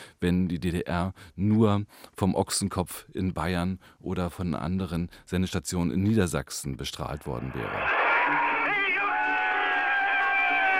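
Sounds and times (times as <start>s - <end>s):
speech: 0.2s - 8.6s
large crowd cheering: 7.4s - 10.7s
whoops and shouts from a crowd: 7.6s - 10.7s.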